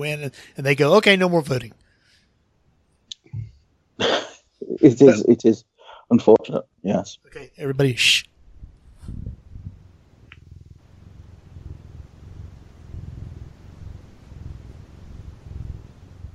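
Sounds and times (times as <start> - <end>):
speech: 0.0 - 1.8, 4.0 - 8.3
cat purring: 9.0 - 16.3.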